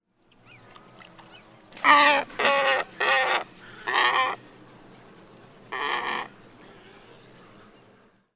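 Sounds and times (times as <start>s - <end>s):
glossy ibis calling: 0.2s - 4.5s, 5.7s - 6.8s.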